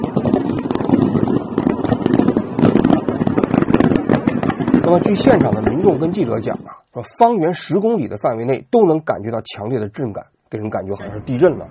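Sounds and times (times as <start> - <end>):
barrage of secondary explosions and crackling bangs: 0.0 - 7.6, 10.6 - 11.7
speech: 4.9 - 11.7.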